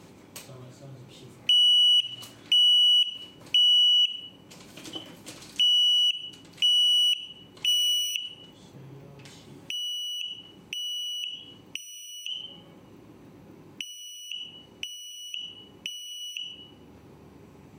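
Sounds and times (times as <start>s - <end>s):
smoke detector alarm sounding: 1.5s - 8.6s, 9.7s - 12.7s, 13.8s - 16.8s.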